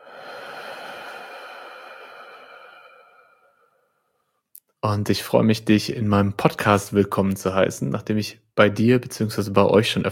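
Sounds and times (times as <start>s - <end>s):
long steady exhale during a breathing exercise: 0.0s - 4.1s
speech: 4.8s - 10.0s.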